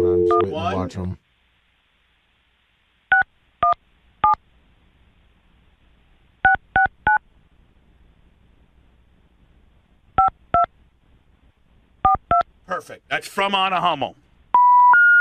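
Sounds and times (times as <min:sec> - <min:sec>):
touch-tone phone keypad beeps: 0:00.0 - 0:00.5, 0:03.1 - 0:04.4, 0:06.4 - 0:07.2, 0:10.2 - 0:10.7, 0:12.0 - 0:12.4, 0:14.6 - 0:15.1
speech: 0:00.4 - 0:01.2, 0:12.8 - 0:14.2.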